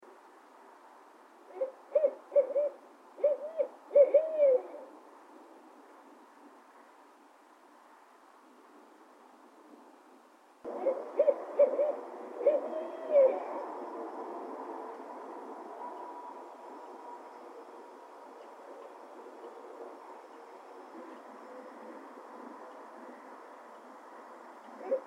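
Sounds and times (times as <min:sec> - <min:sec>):
noisy owl calling: 0:01.5 - 0:04.9, 0:10.7 - 0:13.7, 0:24.8 - 0:25.0.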